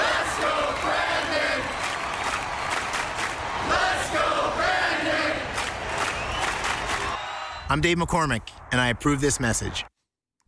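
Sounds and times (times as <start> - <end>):
large crowd chanting a political slogan in unison: 0.0 - 7.2
speech: 7.7 - 9.9.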